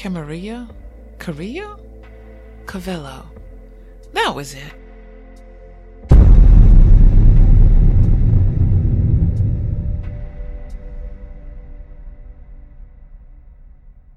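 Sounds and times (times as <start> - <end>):
speech: 0.0 - 1.8, 2.7 - 3.5, 4.1 - 4.8
long echoing rumble: 6.1 - 13.0
loud echoing thunder-like crack: 6.1 - 13.1.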